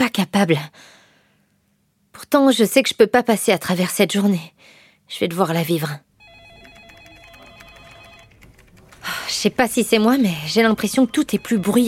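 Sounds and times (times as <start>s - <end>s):
speech: 0.0s - 1.0s, 2.2s - 6.1s, 9.4s - 11.8s
telephone ringing: 6.2s - 11.8s.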